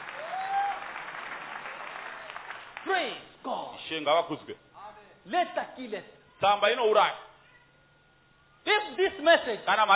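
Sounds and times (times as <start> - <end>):
audience clapping: 0.0 - 3.2
speech: 2.8 - 7.3, 8.6 - 9.9.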